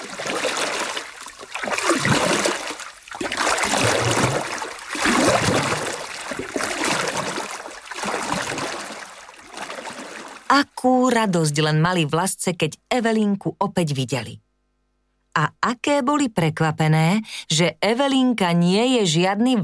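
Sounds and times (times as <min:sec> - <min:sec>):
small boat moving through water with splashing: 0:00.0 - 0:10.5
speech: 0:10.6 - 0:14.4, 0:15.4 - 0:19.6.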